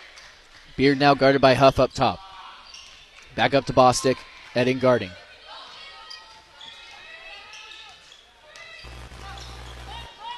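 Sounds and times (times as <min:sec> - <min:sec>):
speech: 0:00.8 - 0:02.2, 0:03.4 - 0:05.2
basketball dribbling on a court during a women's game: 0:08.9 - 0:10.0.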